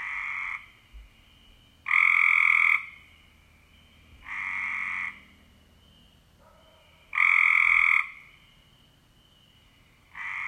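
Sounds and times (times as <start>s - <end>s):
Cope's gray treefrog calling in short raspy trills: 0.0s - 5.4s, 6.8s - 8.8s, 9.7s - 10.4s.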